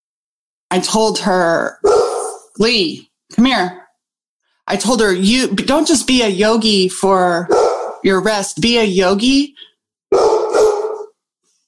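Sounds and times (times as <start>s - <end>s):
speech: 0.7s - 3.8s, 4.7s - 10.3s
dog barking: 1.8s - 2.5s, 7.5s - 8.1s, 10.1s - 11.1s.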